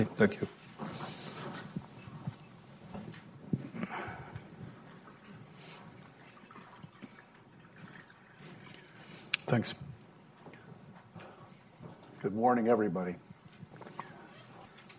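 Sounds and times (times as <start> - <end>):
speech: 0.0 - 0.6, 9.5 - 9.9, 12.2 - 13.3
faint room murmur: 0.0 - 14.9
water poured into a glass: 5.9 - 9.0.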